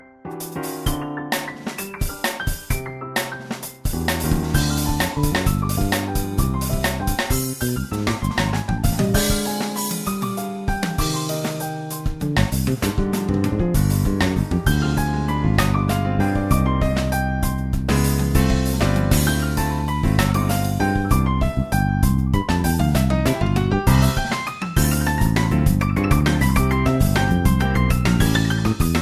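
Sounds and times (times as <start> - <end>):
jazz music: 0.0 - 29.0.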